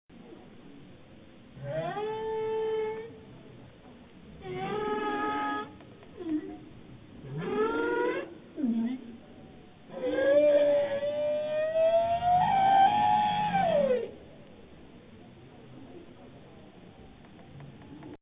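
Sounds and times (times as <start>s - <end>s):
loud Arctic bowhead whale: 1.6s - 3.1s, 4.4s - 6.5s, 7.2s - 8.3s, 9.9s - 14.2s.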